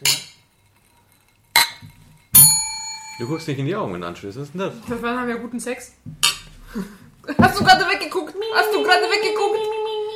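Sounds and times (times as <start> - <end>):
glasses clinking together in a toast: 0.0 - 3.7
speech: 3.2 - 9.8.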